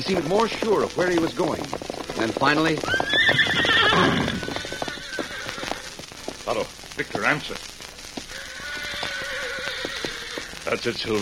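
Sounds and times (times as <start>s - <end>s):
speech: 0.0s - 4.4s, 6.5s - 7.7s, 10.7s - 11.1s
horse hoofbeats clip-clopping: 0.0s - 11.1s
horse neighing: 2.2s - 6.0s, 8.3s - 10.6s.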